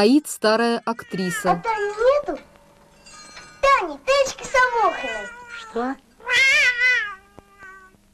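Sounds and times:
speech: 0.0 - 2.4, 3.8 - 6.6
Siamese cat meowing: 0.9 - 2.0, 4.8 - 8.0.

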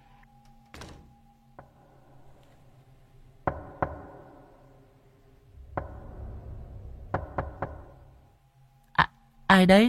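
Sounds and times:
knocking on a door at night: 3.4 - 4.4, 5.6 - 6.4, 7.0 - 8.2.

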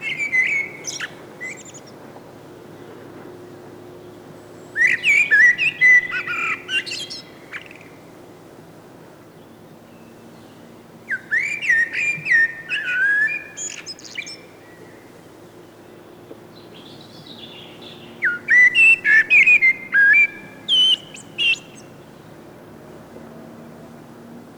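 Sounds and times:
common blackbird singing: 0.0 - 2.0, 4.6 - 8.0, 10.0 - 15.1, 16.6 - 22.2.

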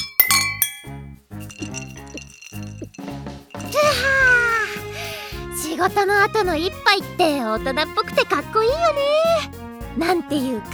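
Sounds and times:
drinking glasses clinking together in a toast at a celebration: 0.0 - 4.2
speech: 5.8 - 10.7.

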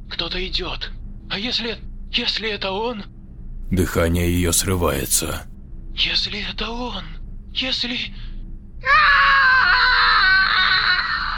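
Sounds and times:
speech: 0.2 - 9.8
frightened woman screaming: 8.9 - 11.3.

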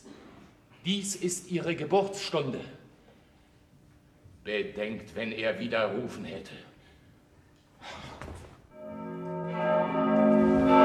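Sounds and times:
speech: 0.8 - 2.8, 4.5 - 6.7
church bell of San Marco ringing: 8.7 - 10.8.

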